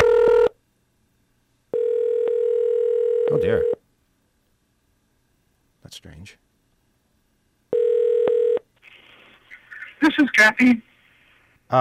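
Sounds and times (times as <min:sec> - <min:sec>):
telephone line ringing tone while a call is placed: 0:00.0 - 0:00.5, 0:01.7 - 0:03.8, 0:07.7 - 0:08.7
speech: 0:03.3 - 0:03.8, 0:05.9 - 0:06.5, 0:10.0 - 0:10.9.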